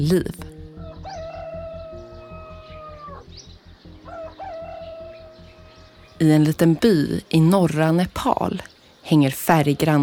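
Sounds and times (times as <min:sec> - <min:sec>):
speech: 0:00.0 - 0:00.4, 0:06.2 - 0:10.0
low rhythmic rumble: 0:00.0 - 0:07.5
village chickens: 0:00.8 - 0:03.2, 0:04.0 - 0:06.2
rooster crowing among village chickens: 0:00.8 - 0:03.3, 0:04.0 - 0:06.2.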